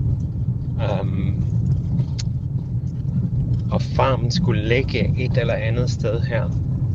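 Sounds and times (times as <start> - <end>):
car driving on a long gravel road: 0.0 - 6.9
speech: 3.8 - 6.6.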